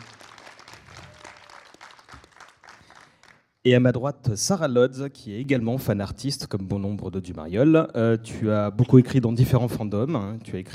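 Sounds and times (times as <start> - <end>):
small crowd clapping: 0.0 - 3.6
speech: 3.6 - 10.7.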